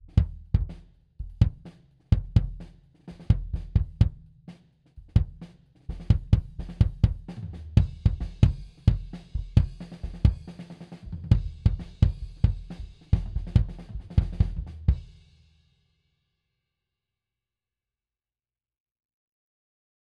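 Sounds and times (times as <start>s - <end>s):
kick drum recorded at a distance through a blanket: 0.0s - 4.3s, 5.0s - 10.5s, 11.2s - 15.1s.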